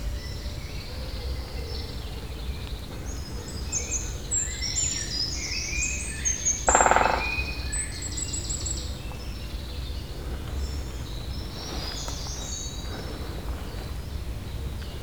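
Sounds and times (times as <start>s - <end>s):
songbirds twittering: 0.0s - 15.0s
great spotted woodpecker drumming on a dead tree stump: 6.4s - 7.7s.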